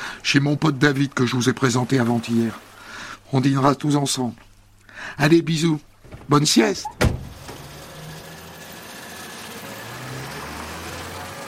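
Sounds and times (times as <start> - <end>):
speech: 0.3 - 2.7, 3.3 - 7.1
faint rattling: 5.8 - 8.6
car engine humming as the car drives off: 5.8 - 11.4.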